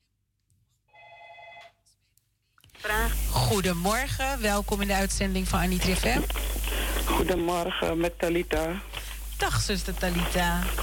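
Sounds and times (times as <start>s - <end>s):
telephone ringing for an incoming call to a radio phone-in: 0.9s - 1.8s
speech: 2.8s - 10.8s.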